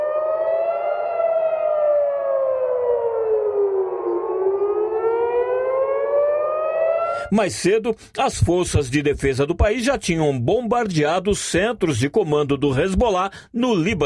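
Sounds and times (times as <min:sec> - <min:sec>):
civil defense air raid siren wailing: 0:00.0 - 0:07.3
speech: 0:07.3 - 0:14.0.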